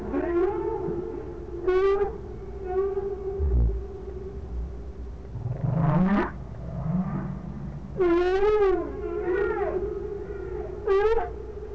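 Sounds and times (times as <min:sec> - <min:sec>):
whale calls: 0:00.0 - 0:04.1, 0:05.5 - 0:11.7
low rumble: 0:03.3 - 0:08.0.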